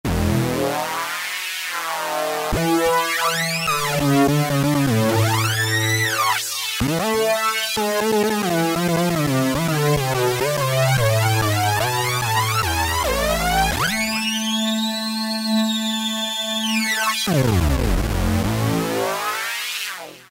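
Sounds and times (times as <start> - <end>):
synthesizer modulation lead: 0.1 - 20.3.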